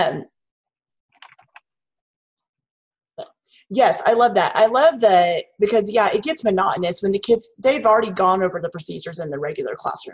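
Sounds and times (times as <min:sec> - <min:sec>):
speech: 0:00.0 - 0:00.3, 0:03.7 - 0:10.1
quick keystrokes on a computer keyboard: 0:01.1 - 0:01.7.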